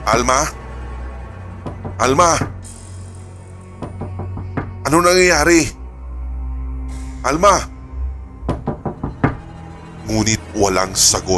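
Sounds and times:
speech: 0.1s - 0.6s, 2.0s - 2.5s, 4.9s - 5.8s, 7.2s - 7.7s, 10.1s - 11.3s
firm knocking on a bathroom door: 1.6s - 2.6s, 3.8s - 4.8s, 8.5s - 9.6s.

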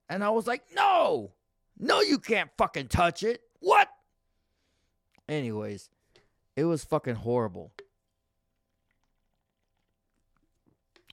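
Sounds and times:
speech: 0.1s - 3.9s, 5.3s - 6.0s, 6.6s - 7.8s
sipping a drink: 7.7s - 11.1s
mouth and swallowing noises: 8.0s - 11.1s.

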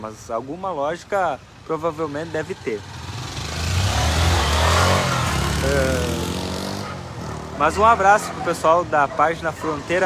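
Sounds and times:
speech: 0.0s - 3.0s, 5.6s - 6.3s, 7.6s - 10.0s
motorcycle engine revving: 2.1s - 8.4s.

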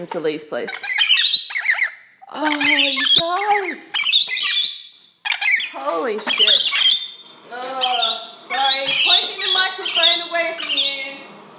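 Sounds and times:
speech: 0.0s - 1.0s, 2.3s - 4.0s, 5.7s - 6.8s, 7.5s - 8.2s, 8.8s - 11.3s
excited pet birds squawking: 0.5s - 11.3s.

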